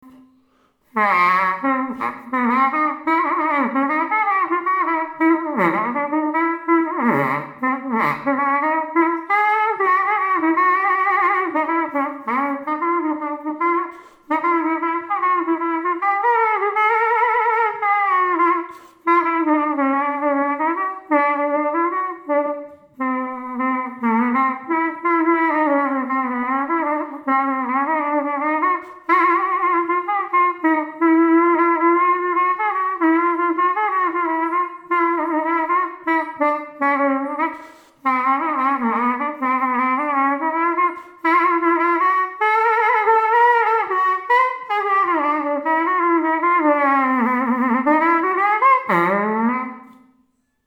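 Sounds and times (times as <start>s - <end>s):
saxophone tooting: 0.0s - 50.2s.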